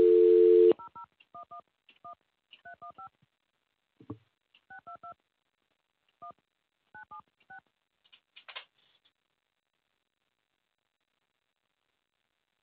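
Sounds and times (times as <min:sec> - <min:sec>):
telephone dial tone: 0:00.0 - 0:00.8.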